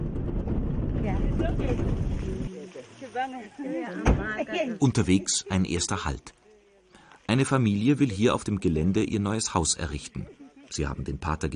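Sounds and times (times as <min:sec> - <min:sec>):
wind and engine rumbling on open pickup truck bed while driving: 0:00.0 - 0:02.5
speech: 0:03.1 - 0:06.4, 0:07.3 - 0:11.5.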